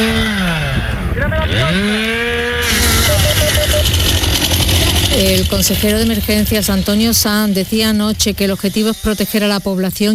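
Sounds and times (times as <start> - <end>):
chainsaw engine revving at an active wildfire site: 0.0 - 8.3
speech: 5.4 - 10.1.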